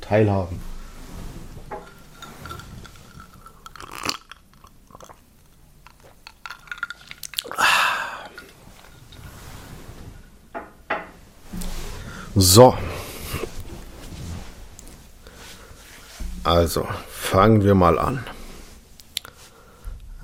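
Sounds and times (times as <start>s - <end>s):
speech: 0.1s - 0.7s, 12.4s - 12.9s, 16.5s - 18.3s
person taking a drink: 1.6s - 9.4s
swallowing: 1.8s - 9.3s.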